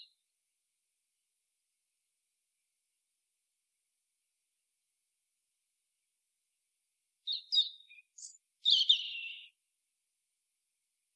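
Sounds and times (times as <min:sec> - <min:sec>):
European robin Erithacus rubecula twittering song: 0:07.2 - 0:09.6.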